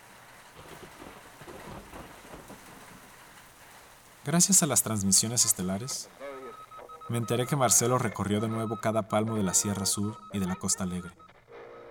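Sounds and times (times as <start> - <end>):
dense summer rain pouring in the capital: 0.0 - 11.2
thunder rumbling: 0.1 - 3.8
speech: 4.2 - 6.3, 7.1 - 11.3.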